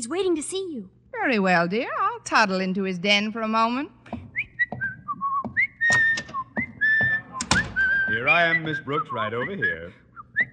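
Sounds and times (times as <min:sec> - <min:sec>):
speech: 0:00.0 - 0:04.0, 0:08.2 - 0:10.0
soft thumps and shuffles: 0:04.0 - 0:08.2
person whistling a bright lilting tune in a hall: 0:04.3 - 0:10.5.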